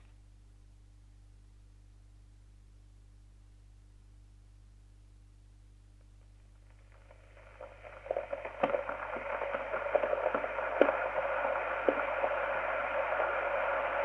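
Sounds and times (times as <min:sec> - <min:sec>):
kettle: 0:06.7 - 0:13.9.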